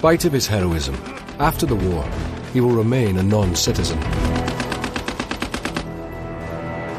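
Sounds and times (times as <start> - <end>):
speech: 0.0 - 4.5
Lewis machine gun firing rapid automatic fire: 0.5 - 5.9.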